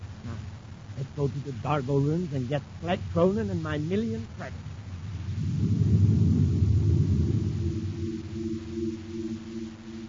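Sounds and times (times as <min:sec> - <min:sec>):
faint tonal whine: 0:00.0 - 0:10.0
speech: 0:01.0 - 0:04.8
spaceship engine blast roaring away: 0:05.1 - 0:10.0.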